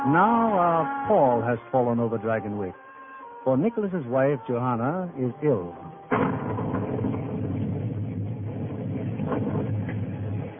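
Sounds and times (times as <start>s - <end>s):
speech: 0.0s - 6.4s
rolling thunder: 6.1s - 10.5s.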